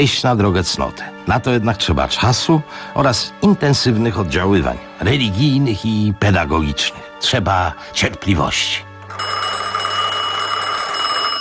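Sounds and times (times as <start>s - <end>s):
speech: 0.0s - 9.4s
telephone ringing with a bright electronic trill: 9.0s - 11.3s.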